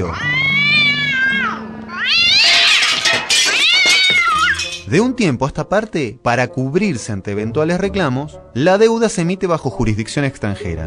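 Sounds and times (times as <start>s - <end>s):
speech: 0.0s - 0.4s, 4.9s - 10.8s
cat meowing loudly in long wavering calls: 0.0s - 4.6s.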